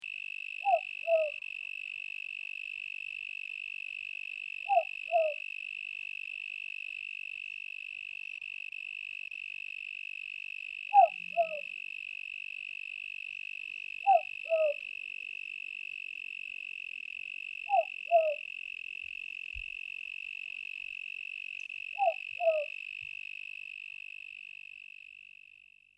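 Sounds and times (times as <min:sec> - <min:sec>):
owl calling in Kings Canyon NT: 0:00.6 - 0:01.5, 0:04.6 - 0:05.5, 0:10.9 - 0:11.8, 0:14.0 - 0:15.0, 0:17.6 - 0:18.6, 0:21.6 - 0:23.0.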